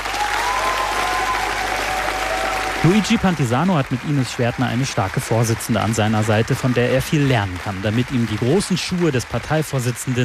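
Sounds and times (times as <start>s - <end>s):
crowd clapping at a party convention: 0.0s - 10.2s
speech: 2.8s - 10.2s.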